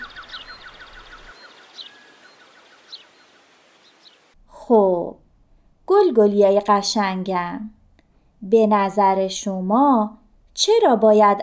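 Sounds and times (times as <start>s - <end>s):
small bird chirping on a branch: 0.0s - 4.4s
wind rustling through branches and leaves: 0.0s - 4.4s
speech: 4.7s - 5.2s, 6.1s - 7.8s, 8.4s - 11.4s.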